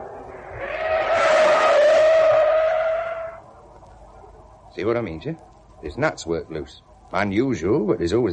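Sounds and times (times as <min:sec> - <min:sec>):
car engine rumble: 0:00.0 - 0:08.3
car tires squealing in a long loud skid: 0:00.4 - 0:03.4
speech: 0:04.8 - 0:08.3.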